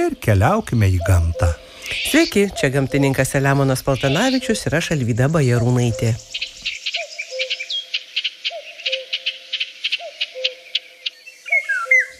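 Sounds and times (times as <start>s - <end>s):
speech: 0.0s - 6.4s
high buzzy chatter of other birds chirping: 0.0s - 12.1s
golden oriole whistling a fluty two-part phrase: 0.9s - 12.1s.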